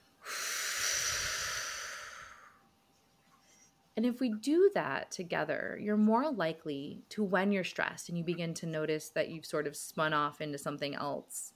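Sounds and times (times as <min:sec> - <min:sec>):
slow exhale during a guided breathing exercise: 0:00.2 - 0:02.6
speech: 0:04.0 - 0:11.5.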